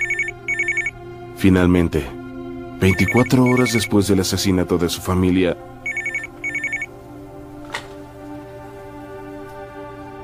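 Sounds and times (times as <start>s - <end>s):
telephone ringing: 0.0s - 1.0s, 2.8s - 3.9s, 5.9s - 6.9s
speech: 1.4s - 2.2s, 2.8s - 5.8s.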